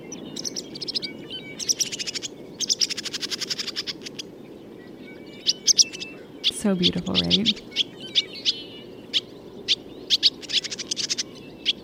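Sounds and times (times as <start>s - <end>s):
barn swallow calls of quick chirps and rattling notes: 0.3s - 4.3s, 5.4s - 11.8s
speech: 6.6s - 7.7s.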